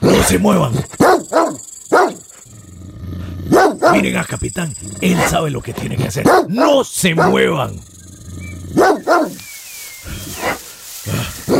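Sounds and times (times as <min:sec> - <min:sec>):
speech: 0:00.2 - 0:01.0, 0:03.9 - 0:07.9
dog barking to scare off a snake: 0:00.9 - 0:02.4, 0:03.5 - 0:04.2, 0:06.2 - 0:07.7, 0:08.7 - 0:09.4.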